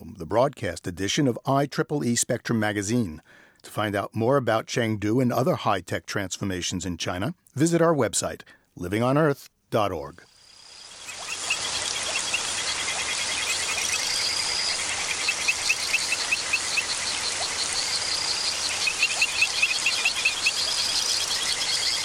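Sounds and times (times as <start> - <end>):
speech: 0.3 - 10.3
poison dart frog calls: 10.3 - 22.0.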